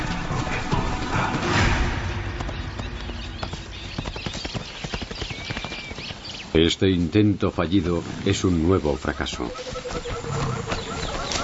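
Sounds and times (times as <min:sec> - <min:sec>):
zebra hooves galloping as the herd chases a young leopard: 0:00.0 - 0:11.4
speech: 0:06.6 - 0:10.2.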